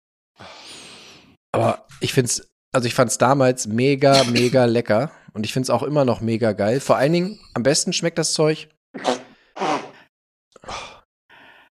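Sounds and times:
speech: 1.5s - 9.2s
person sneezing: 9.0s - 10.0s
breathy inhales: 9.3s - 11.7s.

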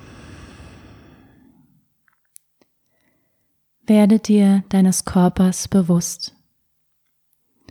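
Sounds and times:
deep breath exhale during a seated relaxation exercise: 0.0s - 1.8s
speech: 3.9s - 6.4s.

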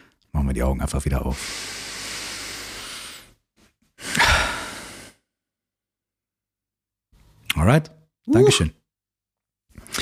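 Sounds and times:
speech: 0.5s - 1.8s, 7.7s - 8.8s
person taking a deep breath in and exhaling during a guided breathing exercise: 1.4s - 5.3s, 9.8s - 10.0s.

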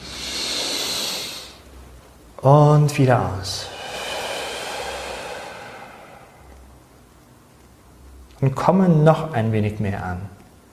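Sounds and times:
deep inhale through the nose during a guided meditation: 0.0s - 1.8s, 3.6s - 6.7s
speech: 2.4s - 3.7s, 8.4s - 10.4s.

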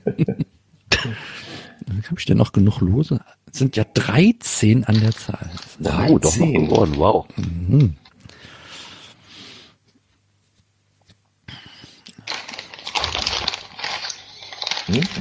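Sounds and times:
speech: 2.0s - 8.0s
paper crackling and rustling: 12.2s - 15.1s.

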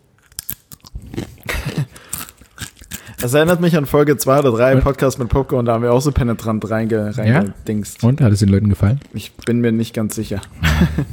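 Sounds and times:
crunching as someone bites into a crisp and chews: 0.2s - 3.6s
speech: 3.2s - 11.1s
laughter: 10.6s - 11.1s.

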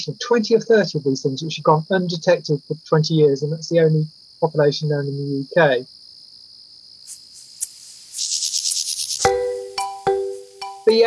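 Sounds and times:
speech: 0.0s - 6.0s
mole cricket buzzing trill: 0.0s - 11.0s
rapid pulsed chirping: 7.0s - 11.0s.

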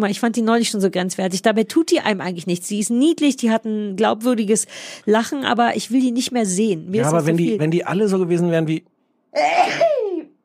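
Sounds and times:
speech: 0.0s - 10.0s
single loud sneeze: 9.4s - 10.1s.

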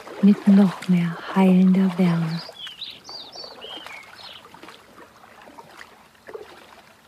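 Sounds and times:
several birds singing in short high chirping phrases: 0.0s - 4.8s
gentle water splashes and soft lapping: 0.0s - 7.0s
speech: 0.2s - 2.5s.

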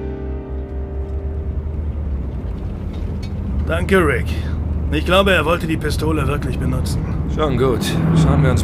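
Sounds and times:
faint humming tone: 0.0s - 3.7s
police patrol car engine rumbling: 0.0s - 8.6s
speech: 3.7s - 8.6s.

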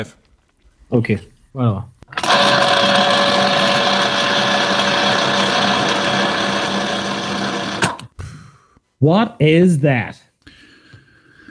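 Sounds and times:
speech: 0.0s - 0.2s, 0.9s - 3.0s, 9.0s - 10.3s
kitchen appliance running with mechanical whir and motor whine: 2.1s - 8.1s.

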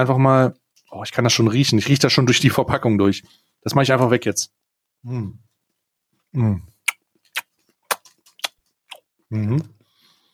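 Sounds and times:
speech: 0.0s - 5.5s, 6.3s - 6.7s, 9.3s - 9.8s
wet lip smacking while tasting whisky: 6.8s - 9.1s.

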